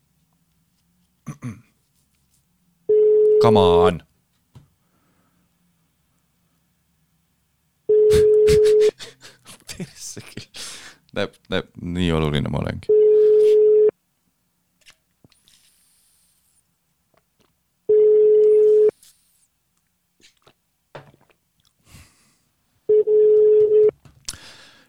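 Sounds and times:
speech: 1.4s - 1.6s, 3.4s - 4.1s, 11.5s - 13.0s
phone ringback tone of unanswered call: 2.9s - 3.6s, 7.9s - 8.9s, 12.9s - 13.9s, 17.9s - 18.9s, 22.9s - 24.0s
laughter: 8.1s - 10.6s.

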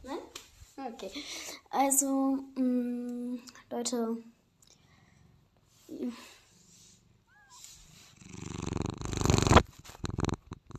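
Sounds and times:
speech: 0.9s - 3.0s, 3.7s - 4.3s, 6.0s - 6.4s
cat purring: 4.8s - 10.7s
cat chirping meow: 7.3s - 7.7s.

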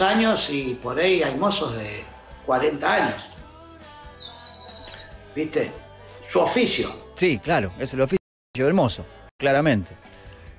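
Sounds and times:
speech: 0.0s - 3.4s, 5.4s - 10.1s
small birds chirping: 3.2s - 5.4s, 10.0s - 10.5s.

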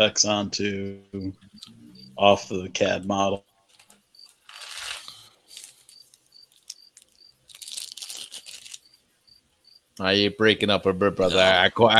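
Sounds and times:
speech: 0.0s - 3.5s, 10.0s - 11.9s
crickets chirping: 0.8s - 10.3s
person crunching: 3.6s - 9.0s.

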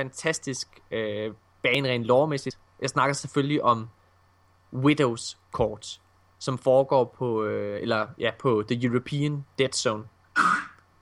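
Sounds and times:
speech: 0.0s - 4.0s, 4.7s - 10.7s
dog retching on the floor: 10.4s - 10.8s.

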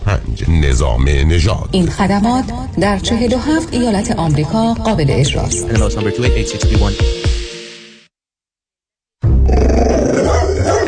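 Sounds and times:
speech: 0.4s - 7.2s
two-year-old pit bull dog growling: 9.5s - 10.8s.

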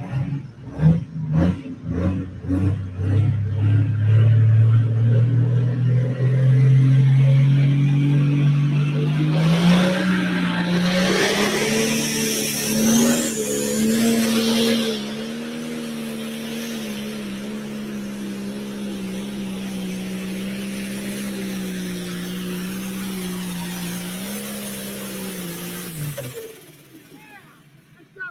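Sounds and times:
10,000-pound pro stock pulling truck engine roaring at a truck pull: 0.0s - 28.2s.

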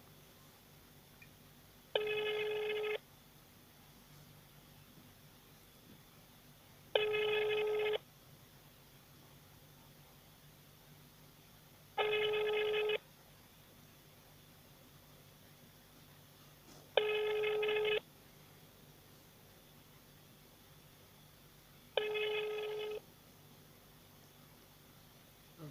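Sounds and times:
quiet hiss: 0.0s - 25.6s
telephone ringback tone from a call to a consumer-protection agency office in Biysk Russia: 2.0s - 3.0s, 6.9s - 8.0s, 12.0s - 13.0s, 17.0s - 18.0s, 22.0s - 23.0s.

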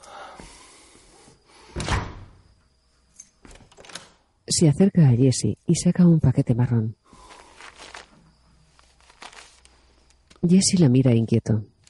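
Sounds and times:
door being closed with a solid thump: 1.7s - 2.4s
door latch clicking and rattling as it is bolted: 3.5s - 4.2s
speech: 4.5s - 7.0s, 10.4s - 11.7s.

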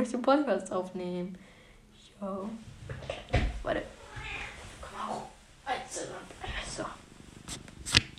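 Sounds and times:
speech: 0.0s - 1.5s, 2.2s - 4.0s
cat purring with a low rumbling motor-like vibration: 2.8s - 8.0s.

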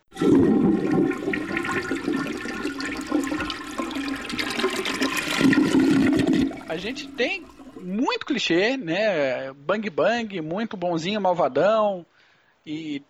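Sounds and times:
toilet flushing: 0.0s - 8.2s
speech: 6.8s - 13.0s.

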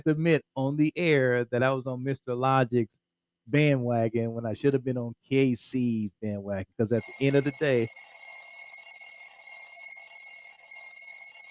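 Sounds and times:
speech: 0.0s - 8.0s
high-pitched electronic alarm ringing: 7.0s - 11.4s.

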